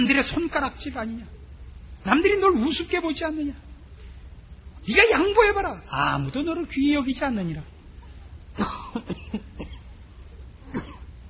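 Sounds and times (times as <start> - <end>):
speech: 0.0 - 1.4, 2.0 - 3.6, 4.8 - 7.7, 8.6 - 9.8
person coughing: 8.6 - 9.9, 10.7 - 11.1.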